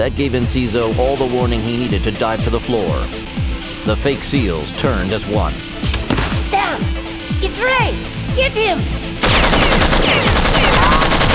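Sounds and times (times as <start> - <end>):
speech: 0.0 - 5.7, 6.8 - 10.5
rapid automatic rifle fire in a concrete building: 9.2 - 11.3.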